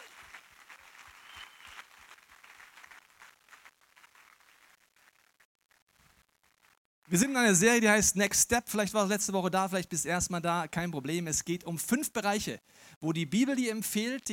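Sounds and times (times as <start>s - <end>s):
audience applauding in a church: 0.0s - 4.8s
speech: 7.1s - 14.3s.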